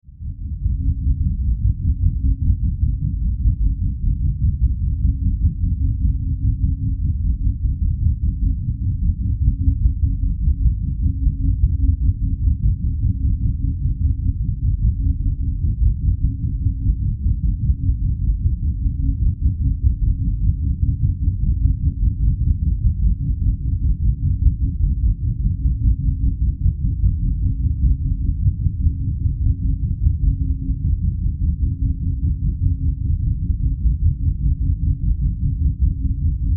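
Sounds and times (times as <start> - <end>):
science fiction power drone with throbbing pulses: 0.2 - 36.5.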